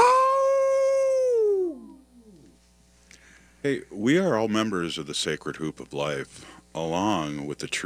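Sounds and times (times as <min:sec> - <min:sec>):
wolf howling: 0:00.0 - 0:02.5
speech: 0:03.6 - 0:07.8.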